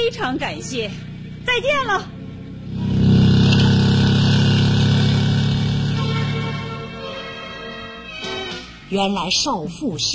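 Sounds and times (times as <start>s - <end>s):
speech: 0.0s - 2.9s, 8.9s - 10.1s
motorcycle speeding away: 0.0s - 7.0s.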